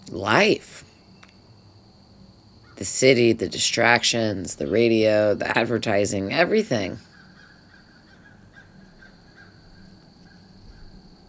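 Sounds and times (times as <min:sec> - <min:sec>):
speech: 0:00.2 - 0:00.9, 0:02.8 - 0:07.1
birds calling outdoors as they fly around: 0:07.0 - 0:11.0.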